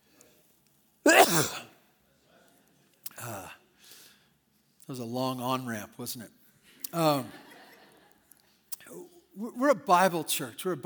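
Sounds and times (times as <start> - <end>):
speech: 1.0 - 1.7, 4.9 - 7.4, 8.9 - 10.8
person sneezing: 1.1 - 1.7.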